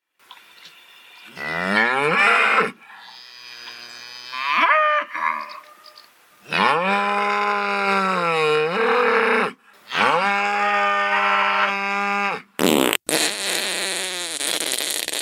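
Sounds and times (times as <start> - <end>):
cow mooing: 1.3 - 5.7, 6.5 - 12.4
fart sound effect: 12.6 - 15.2.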